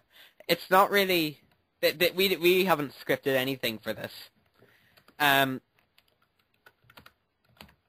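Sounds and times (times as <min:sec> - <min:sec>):
speech: 0:00.5 - 0:04.3, 0:05.2 - 0:05.7
computer keyboard typing: 0:04.4 - 0:07.8.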